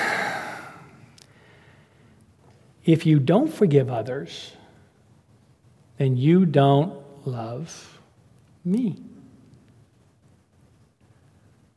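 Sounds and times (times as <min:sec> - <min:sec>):
deep breath: 0:00.0 - 0:02.2
speech: 0:02.8 - 0:04.6, 0:06.0 - 0:08.0, 0:08.6 - 0:09.1.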